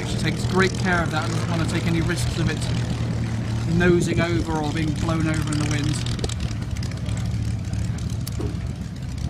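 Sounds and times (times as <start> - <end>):
Spitfire aircraft taxiing with piston engine running: 0.0 - 9.2
speech: 0.2 - 3.0, 3.7 - 6.2.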